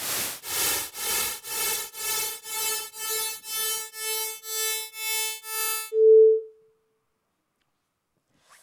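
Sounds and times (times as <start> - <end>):
bursts of repeated noise producing perceived tonal pitch: 0.2 - 5.9
short clear steady tone: 5.6 - 6.7.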